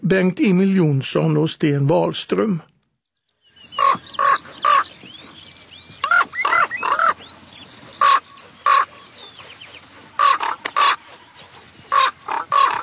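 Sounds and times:
speech: 0.1s - 2.7s
common raven croaking in flight: 3.7s - 12.8s.

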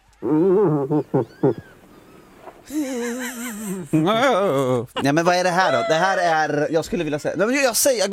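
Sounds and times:
hiss: 0.0s - 8.1s
speech: 0.2s - 1.8s, 2.6s - 8.1s
irritated moose cow calling: 0.2s - 3.2s, 5.5s - 6.5s
laughter: 0.7s - 1.7s, 2.7s - 6.7s.

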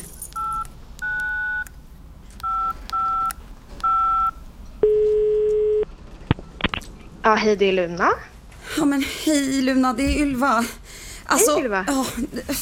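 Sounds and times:
touch-tone phone keypad tones: 0.4s - 1.7s, 2.4s - 5.9s
speech: 7.2s - 12.5s.

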